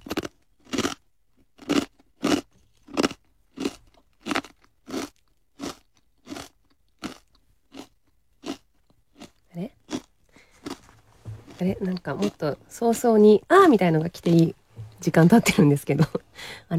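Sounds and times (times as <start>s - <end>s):
crisp crunching of several food sticks being chewed: 0.0s - 12.6s
speech: 11.6s - 16.7s.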